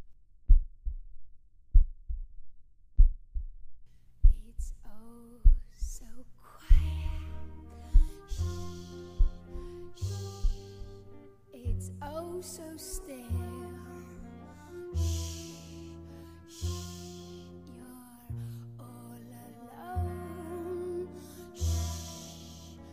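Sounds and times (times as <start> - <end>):
human heartbeat: 0.0 - 11.0
music: 6.4 - 22.9.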